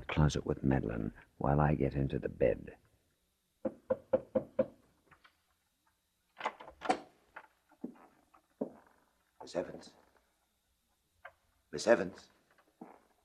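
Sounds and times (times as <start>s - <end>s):
speech: 0.2s - 2.8s, 9.5s - 10.0s, 11.7s - 12.4s
knocking on a door: 3.6s - 4.8s.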